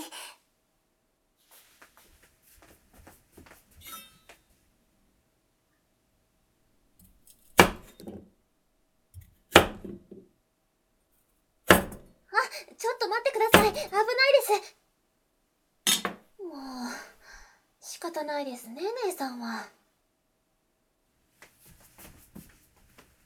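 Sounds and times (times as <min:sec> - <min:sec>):
faint rustling: 0:01.4 - 0:04.7, 0:21.2 - 0:23.2
knife chopping green onion, carrot and potato: 0:07.5 - 0:08.2, 0:09.2 - 0:10.1, 0:11.7 - 0:12.1
speech: 0:13.1 - 0:14.8, 0:18.1 - 0:19.8.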